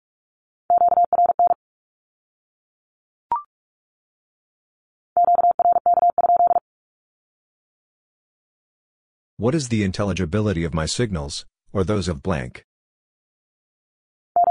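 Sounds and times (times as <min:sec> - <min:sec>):
Morse code beeps sending a Q-code at 45 words per minute: 0:00.7 - 0:01.6, 0:05.2 - 0:06.6, 0:14.4 - 0:14.5
speech: 0:09.4 - 0:12.7.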